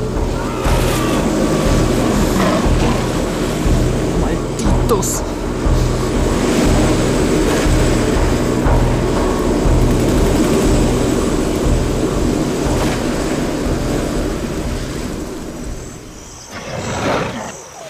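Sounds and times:
helicopter flying overhead: 0.0 - 16.4
speech: 4.9 - 5.3.

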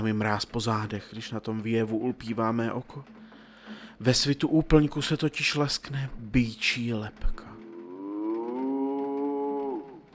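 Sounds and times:
speech: 0.0 - 7.4
cow-like creature mooing in a garden: 7.6 - 10.1.

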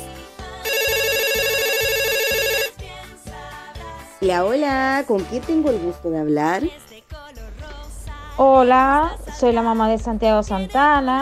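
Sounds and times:
rhythmic music: 0.0 - 11.2
telephone ringing with a warbling pulsing tone: 0.6 - 2.8
speech: 4.2 - 6.8, 8.4 - 11.2.

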